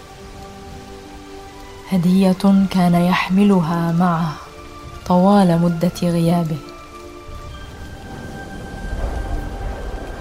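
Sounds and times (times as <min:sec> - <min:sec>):
steady rain falling at night: 0:00.0 - 0:10.1
speech: 0:01.9 - 0:04.4, 0:05.1 - 0:06.7
faint low rumbling: 0:07.2 - 0:10.1.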